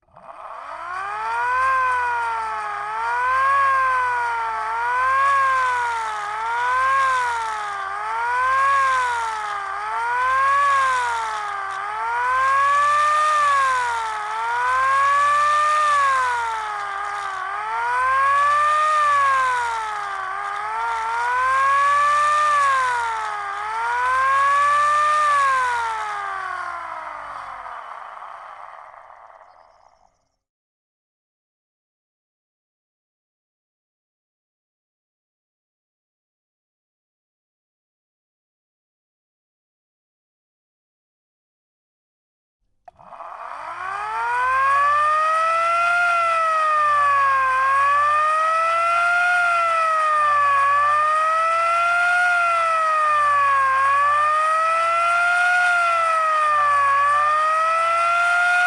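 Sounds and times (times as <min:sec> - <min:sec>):
GAZ-69 siren modulating: 0:00.2 - 0:30.3, 0:42.9 - 0:58.6.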